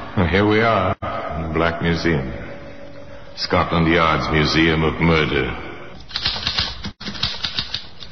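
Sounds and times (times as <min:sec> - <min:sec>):
speech: 0:00.3 - 0:02.4, 0:03.4 - 0:05.7
typewriter clacking: 0:06.0 - 0:08.1.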